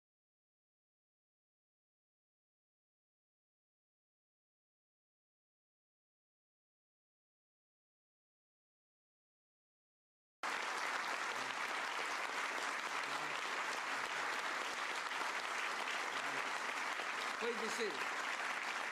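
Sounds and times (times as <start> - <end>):
audience applause from a large crowd: 10.4 - 18.8.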